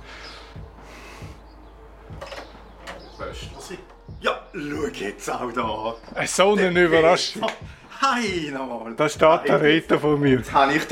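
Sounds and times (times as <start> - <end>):
door opening with scraping and knocking: 2.1 - 4.1
speech: 3.4 - 10.9.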